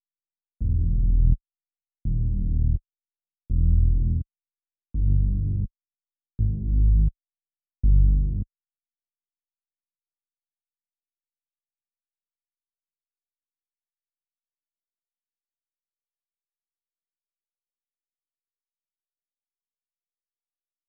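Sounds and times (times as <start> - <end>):
bass melody loop in G sharp minor: 0.6 - 1.4, 2.1 - 2.8, 3.5 - 4.3, 5.0 - 5.7, 6.4 - 7.1, 7.9 - 8.5.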